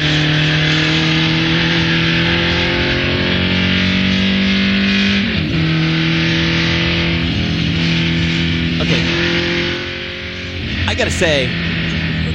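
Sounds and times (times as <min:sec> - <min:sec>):
car engine revving: 0:00.0 - 0:12.3
speech: 0:11.1 - 0:11.6.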